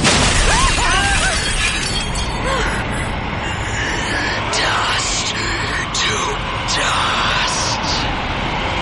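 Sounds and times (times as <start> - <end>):
glass windows shattering: 0.0 - 2.7
icy wind blowing through shattered windows: 0.0 - 8.7.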